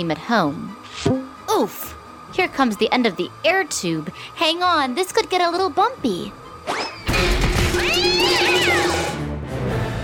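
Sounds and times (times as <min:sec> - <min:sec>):
speech: 0:00.0 - 0:06.8
busy noisy background: 0:00.0 - 0:09.2
cat yowling meow: 0:07.8 - 0:08.9.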